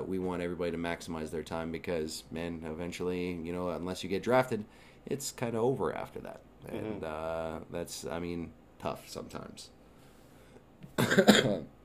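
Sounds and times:
speech: 0.1 - 9.8, 10.9 - 11.8
person coughing: 10.9 - 11.7.

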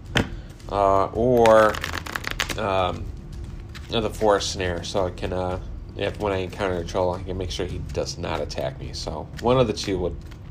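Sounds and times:
deck of game cards shuffled for a mulligan: 0.1 - 5.2, 7.1 - 10.4
speech: 0.7 - 1.9, 2.6 - 3.2, 3.9 - 10.4.

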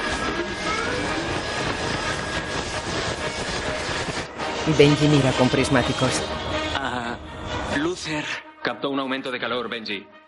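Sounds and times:
aircraft propellers spinning up as plane engines start: 0.0 - 5.5
speech: 4.7 - 6.4, 8.0 - 10.2.

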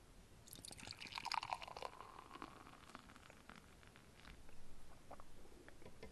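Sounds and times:
reddish beer pouring into a glass: 0.5 - 4.5.

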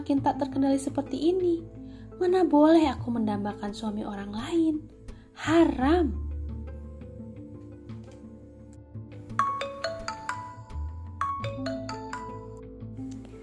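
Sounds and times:
speech: 0.0 - 6.2
mobile phone message notification ringtone jingle: 9.3 - 12.6.

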